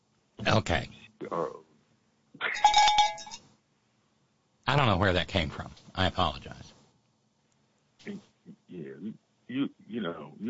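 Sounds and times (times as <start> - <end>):
speech: 0.4 - 1.7, 2.4 - 2.8, 4.7 - 6.8, 8.0 - 10.4
metallic bell ringing: 2.6 - 3.4.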